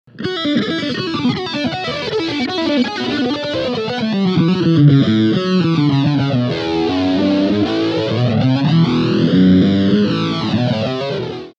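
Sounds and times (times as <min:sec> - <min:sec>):
GP16 guitar sounds: 0:00.1 - 0:11.5.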